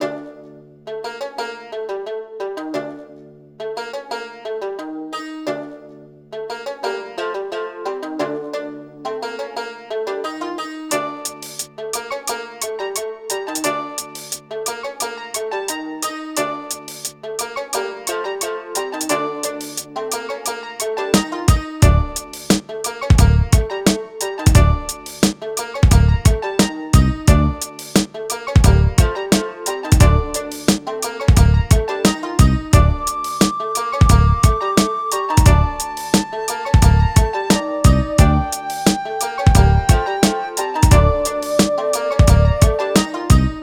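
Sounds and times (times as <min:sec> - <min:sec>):
exotica hip hop beat in D minor: 0:11.2 - 0:12.4, 0:13.3 - 0:15.4, 0:16.7 - 0:17.7, 0:19.0 - 0:43.6.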